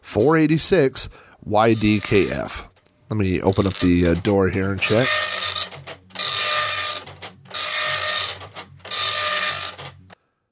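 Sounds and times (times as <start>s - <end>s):
speech: 0.1s - 5.6s
printer printing: 1.8s - 2.5s, 3.4s - 10.2s.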